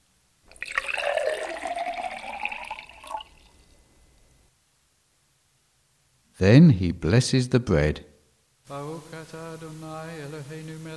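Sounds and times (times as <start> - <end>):
wine pouring into a glass: 0.5 - 3.7
speech: 6.4 - 8.1.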